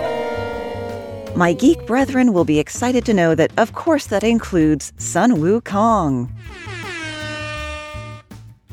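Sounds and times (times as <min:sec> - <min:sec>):
air horn blast: 0:00.0 - 0:02.5, 0:06.4 - 0:08.3
pulsing low beat: 0:00.0 - 0:03.1
speech: 0:01.3 - 0:06.8.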